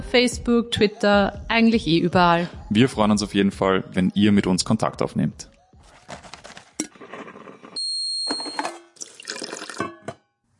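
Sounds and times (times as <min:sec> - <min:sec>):
speech: 0:00.1 - 0:05.5
glass clinking: 0:08.3 - 0:10.3
water pouring into a glass: 0:08.9 - 0:10.0.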